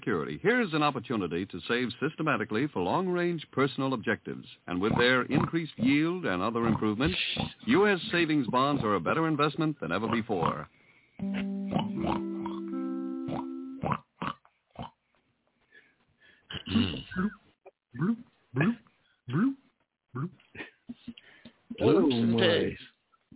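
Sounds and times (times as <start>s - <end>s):
speech: 0.0s - 12.3s, 21.8s - 22.8s
pig louder squealing grunt: 4.8s - 6.0s, 6.6s - 7.6s, 16.5s - 17.4s, 18.0s - 19.6s
pig oinking and grunting in snorting bursts: 4.8s - 6.0s, 6.6s - 7.6s, 8.5s - 9.0s, 11.7s - 12.6s, 16.5s - 17.4s, 18.0s - 19.6s, 20.2s - 20.4s
electronic bloop tones: 11.2s - 13.9s.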